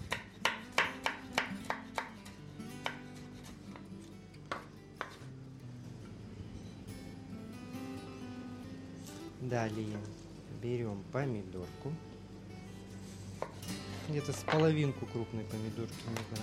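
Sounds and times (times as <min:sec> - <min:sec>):
knife slicing bell pepper into strips on a cutting board: 0:00.0 - 0:03.9, 0:04.5 - 0:05.2, 0:13.4 - 0:14.7
faint music: 0:00.0 - 0:16.4
speech: 0:09.4 - 0:12.1, 0:14.1 - 0:16.4.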